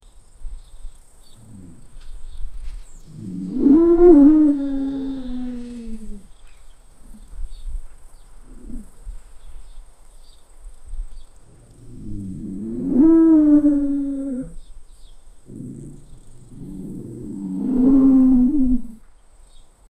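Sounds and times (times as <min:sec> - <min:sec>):
wild boar growling: 0:01.4 - 0:06.3, 0:08.5 - 0:09.0, 0:11.5 - 0:14.6, 0:15.4 - 0:19.0.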